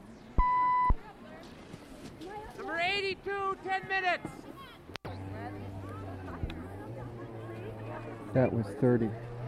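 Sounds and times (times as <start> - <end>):
steady electronic beep: 0.4 - 1.0
speech: 3.1 - 4.4, 8.4 - 9.3.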